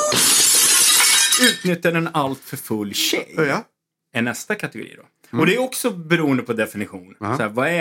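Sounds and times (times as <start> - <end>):
drinking glass rubbed along its rim ringing: 0.1 - 1.7
speech: 1.4 - 7.7.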